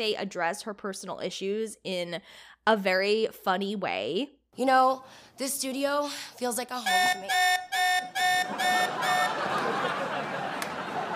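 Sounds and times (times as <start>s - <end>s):
speech: 0.0s - 10.1s
electronic alarm beeping on a studio stage: 6.8s - 9.6s
laughter: 8.3s - 11.1s.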